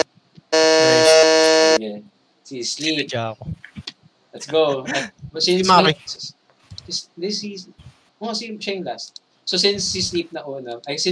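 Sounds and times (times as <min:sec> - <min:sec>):
electronic game buzzer on a website: 0:00.0 - 0:01.8
speech: 0:02.5 - 0:03.8, 0:04.4 - 0:11.0.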